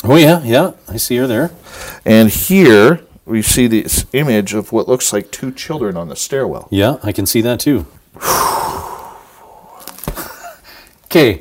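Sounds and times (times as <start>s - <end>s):
speech: 0.1s - 8.8s, 11.1s - 11.3s
tour guide's deep breath on a haunted tour: 1.6s - 2.0s, 8.2s - 11.0s.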